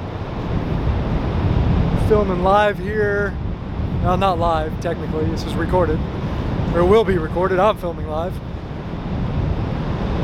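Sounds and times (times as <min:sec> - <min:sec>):
Pacific Ocean surf: 0:00.0 - 0:10.2
gusty wind buffeting the microphone: 0:00.0 - 0:10.2
speech: 0:02.1 - 0:03.4, 0:04.0 - 0:06.2, 0:06.8 - 0:08.5.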